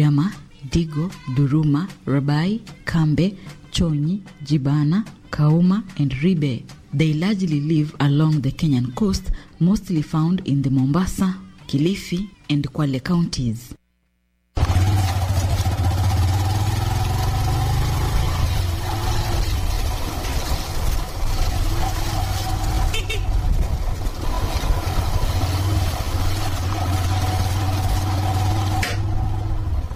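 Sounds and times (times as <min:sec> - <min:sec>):
speech: 0:00.0 - 0:13.8
public motorbike taxi engine droning while riding: 0:14.6 - 0:29.9
road noise: 0:14.6 - 0:29.9
rushing wind: 0:18.7 - 0:26.8.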